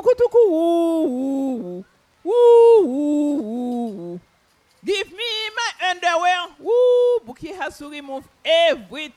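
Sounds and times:
speech: 0.0s - 1.9s, 7.7s - 9.1s
person's voice imitating a pigeon's cooing song: 0.0s - 4.3s, 6.6s - 7.4s.

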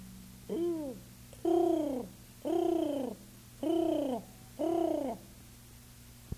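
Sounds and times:
steady low hum: 0.0s - 6.3s
pigeons cooing: 0.5s - 5.3s.

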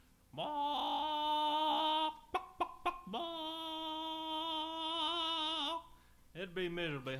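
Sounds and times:
chicken calling: 0.3s - 6.0s
speech: 0.4s - 0.8s, 6.4s - 7.1s.

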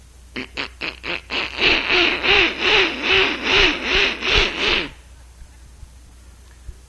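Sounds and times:
person imitating duck quacking: 0.4s - 5.0s.

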